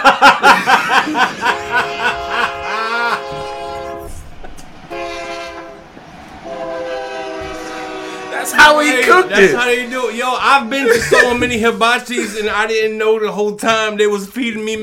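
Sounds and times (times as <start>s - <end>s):
laughter: 0.0s - 4.7s, 8.8s - 12.8s
cartoonish steam train effect with rhythmic chugging puffs: 1.1s - 8.6s
loud sustained multi-tone steam train whistle: 1.4s - 4.2s, 4.9s - 5.8s, 6.4s - 9.2s
speech: 9.4s - 14.8s.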